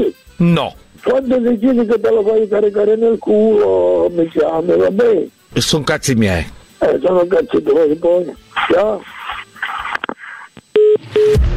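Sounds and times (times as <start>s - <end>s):
speech: 0.0s - 9.2s
telephone dialing beeps placing a prank call: 10.7s - 11.3s.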